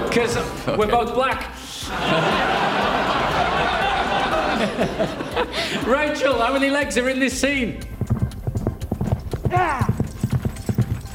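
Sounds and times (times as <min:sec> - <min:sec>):
speech: 0:00.2 - 0:03.8, 0:04.6 - 0:07.9, 0:09.5 - 0:09.8
laughter: 0:01.9 - 0:06.6
horse hooves clip-clopping: 0:07.4 - 0:11.1
horse whinny: 0:08.2 - 0:11.1.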